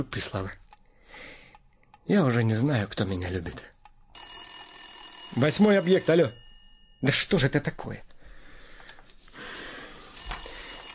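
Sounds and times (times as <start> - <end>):
speech: 0.0 - 0.6, 2.1 - 3.8, 5.3 - 6.4, 7.0 - 8.1
telephone ringing with a bright trilling bell tone: 4.1 - 7.3, 10.1 - 10.9.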